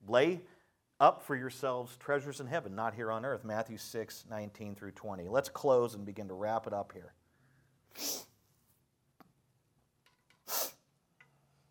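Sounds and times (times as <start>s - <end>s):
speech: 0.1s - 7.2s, 7.9s - 8.3s
faint sniffs: 7.5s - 8.6s, 10.4s - 10.9s
person sneezing from a cold: 7.9s - 8.4s, 10.5s - 10.8s.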